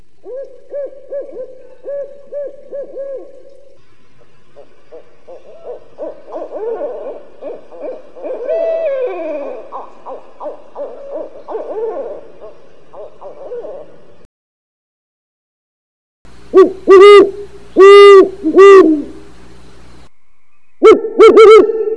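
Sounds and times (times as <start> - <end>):
barred owl calls: 0.2 - 3.4, 4.6 - 14.1, 16.5 - 19.2.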